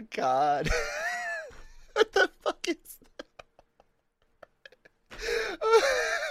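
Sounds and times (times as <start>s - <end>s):
speech: 0.1s - 0.9s
laughter: 0.7s - 5.0s
drawn-out wheezing gasp: 5.1s - 6.1s.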